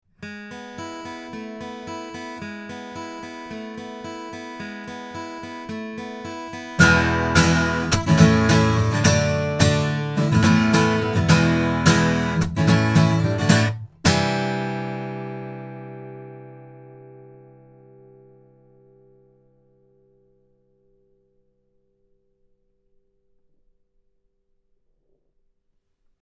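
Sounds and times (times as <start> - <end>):
guitar recorded with cardioid microphone: 0.0 - 23.6.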